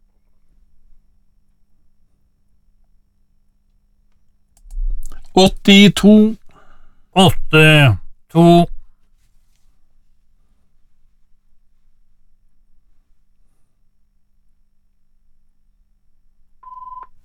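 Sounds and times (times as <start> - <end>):
low rumble: 4.6 - 6.1
speech: 5.4 - 6.4, 7.2 - 8.7
telephone ringing tone on a call: 16.6 - 17.1.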